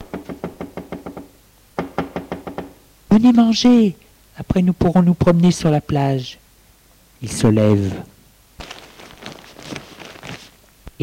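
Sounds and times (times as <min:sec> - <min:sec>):
knocking on a door: 0:00.0 - 0:02.8
speech: 0:03.2 - 0:06.4, 0:07.2 - 0:08.1.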